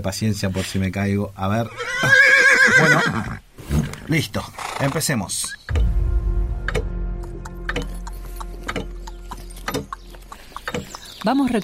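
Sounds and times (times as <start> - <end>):
speech: 0.0 - 3.4, 4.1 - 5.7, 11.2 - 11.6
steady low rumble: 5.7 - 10.4
horse hooves walking slowly on hard ground: 6.8 - 11.6.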